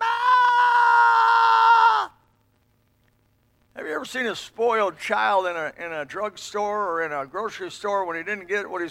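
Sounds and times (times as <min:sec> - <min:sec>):
person imitating people screaming at the sky: 0:00.0 - 0:02.2
speech: 0:04.0 - 0:08.8.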